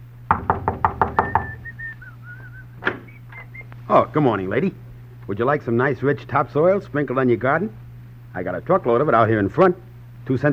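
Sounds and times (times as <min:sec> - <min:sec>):
sharp knocks on a door: 0:00.3 - 0:01.6
faint whistling tone: 0:01.2 - 0:03.7
speech: 0:03.9 - 0:10.5.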